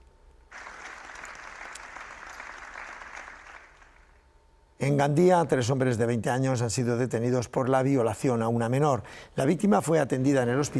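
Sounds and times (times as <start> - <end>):
crowd clapping after a minute of silence: 0.5 - 4.3
speech: 4.8 - 10.7.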